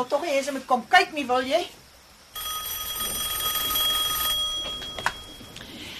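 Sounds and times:
speech: 0.0 - 1.8
telephone bell ringing with bright metallic trill: 2.3 - 5.9.

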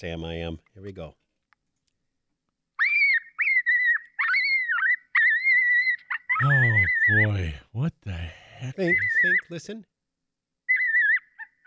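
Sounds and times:
speech: 0.0 - 1.2, 6.4 - 9.9
coyote pup distress call: 2.8 - 7.3, 8.8 - 9.5, 10.6 - 11.6.

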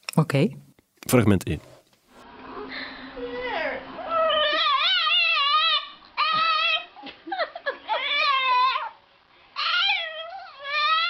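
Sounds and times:
speech: 0.2 - 1.7
pug yowling in baby-like cries: 3.2 - 9.0, 9.6 - 11.0.

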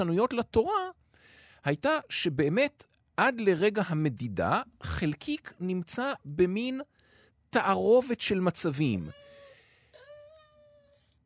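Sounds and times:
speech: 0.0 - 1.0, 1.6 - 6.9, 7.5 - 9.2
cat meowing in distress: 9.1 - 11.0.

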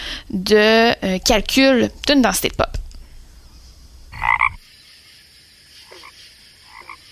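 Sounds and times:
speech: 0.3 - 2.6
steady high insect-like hum: 3.0 - 7.0
frogs croaking in a pond: 4.1 - 4.6, 5.7 - 7.0.

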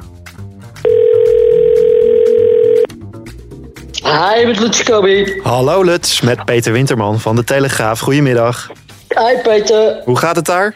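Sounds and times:
telephone dial tone as a call is placed: 0.9 - 2.9
speech: 4.1 - 10.7.

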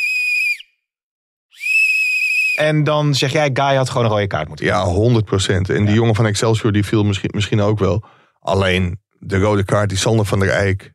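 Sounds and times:
referee's whistle blasts: 0.0 - 0.7, 1.6 - 2.7
speech: 2.6 - 10.9.

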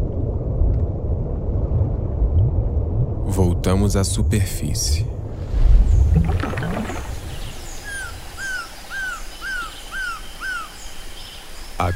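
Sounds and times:
low watery rumble: 0.0 - 8.6
speech: 3.4 - 5.2, 6.1 - 6.7
golden surucuá trogon calling at a river edge in a forest: 6.8 - 11.9
faint chirps from other birds: 7.0 - 11.9.

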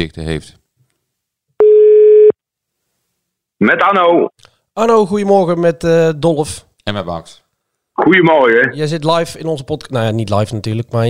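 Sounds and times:
speech: 0.0 - 0.6, 3.6 - 7.4, 8.0 - 11.0
telephone ringing tone while placing a call: 1.6 - 2.4.

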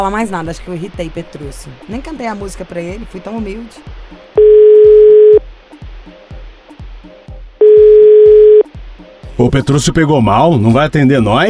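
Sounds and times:
speech: 0.0 - 4.2, 9.4 - 11.4
telephone tones after a dropped call: 4.4 - 5.4, 7.6 - 8.6.

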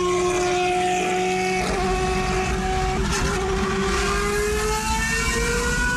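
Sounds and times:
GP2 single-seater race car engine roaring on a public road: 0.0 - 5.9.

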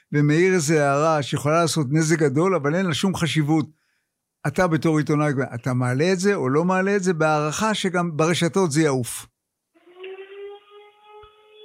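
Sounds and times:
speech: 0.1 - 3.8, 4.4 - 9.3
air raid warning siren wailing: 9.8 - 11.6.

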